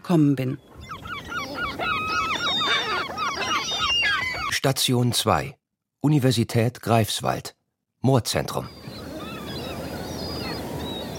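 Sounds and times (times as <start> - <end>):
speech: 0.1 - 0.7, 4.6 - 8.8
several gulls calling: 0.5 - 4.6, 8.4 - 11.1.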